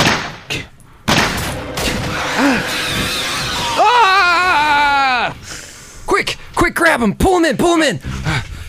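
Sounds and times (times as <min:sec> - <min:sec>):
gunshots in an animated scene: 0:00.0 - 0:00.5, 0:01.1 - 0:03.5
dense sustained noise: 0:01.4 - 0:06.0
person yelling in a high, strained voice: 0:03.6 - 0:05.4
speech: 0:07.0 - 0:08.2.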